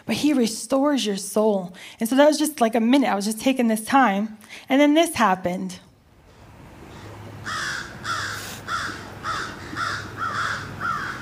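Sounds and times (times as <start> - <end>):
speech: 0.1 - 5.9
crows cawing and squabbling on a roof: 7.4 - 11.1.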